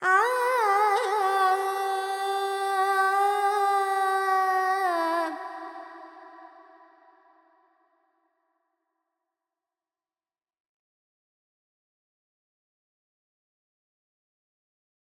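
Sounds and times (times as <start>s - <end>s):
Carnatic female alap in Panthuvarali with effects: 0.0s - 6.8s.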